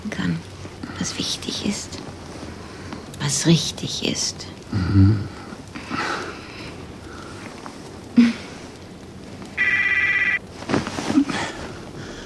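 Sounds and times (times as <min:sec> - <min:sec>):
speech: 0:00.0 - 0:02.2, 0:03.3 - 0:06.0
rustling: 0:01.4 - 0:03.4, 0:05.4 - 0:12.2
mobile phone ringing with a short electronic trill: 0:09.6 - 0:10.4.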